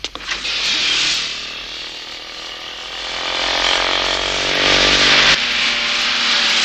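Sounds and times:
engines of cars chasing a motorcycle roaring: 0:00.0 - 0:06.6.

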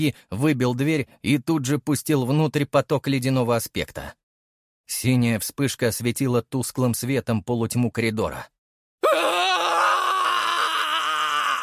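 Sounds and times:
speech: 0:00.0 - 0:04.2, 0:04.9 - 0:08.6
agonized human scream echoing in a corridor: 0:09.0 - 0:11.6.

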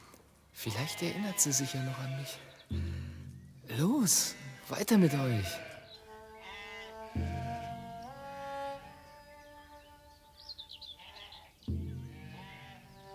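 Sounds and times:
sheep from a shepherd's flock bleating: 0:00.6 - 0:02.5, 0:04.1 - 0:08.9, 0:11.0 - 0:13.1
speech: 0:00.6 - 0:03.1, 0:03.7 - 0:05.7, 0:07.2 - 0:07.5.

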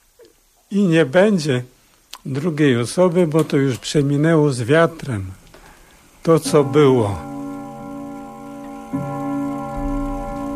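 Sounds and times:
speech: 0:00.7 - 0:05.4, 0:06.2 - 0:07.3
1935 cabinet clock ticking: 0:06.3 - 0:10.5
steady ringing tone: 0:06.4 - 0:10.5.

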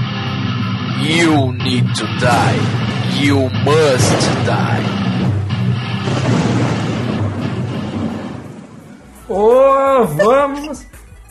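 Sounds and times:
speech: 0:01.0 - 0:05.1, 0:09.3 - 0:10.8
thunder rolling: 0:01.1 - 0:09.4.

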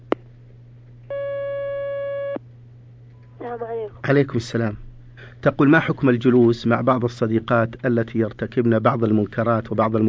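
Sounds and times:
low constant hum: 0:00.0 - 0:10.0
telephone line tone as a caller is put through on a phone-in line: 0:01.1 - 0:02.4
speech: 0:03.6 - 0:10.0.

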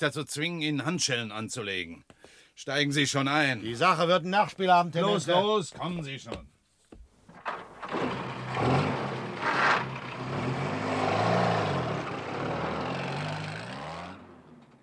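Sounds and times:
speech: 0:00.0 - 0:06.5, 0:07.9 - 0:08.9
jeep engine running on a lonely road: 0:07.6 - 0:14.8.

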